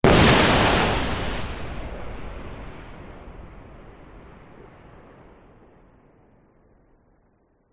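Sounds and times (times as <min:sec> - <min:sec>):
thunder and lightning: 0:00.0 - 0:06.0.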